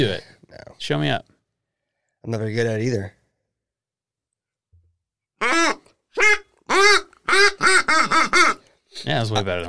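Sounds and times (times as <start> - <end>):
speech: 0.0 - 1.3, 2.2 - 3.2, 9.0 - 9.6
mallard duck call blown in nasal quacks: 5.4 - 8.7.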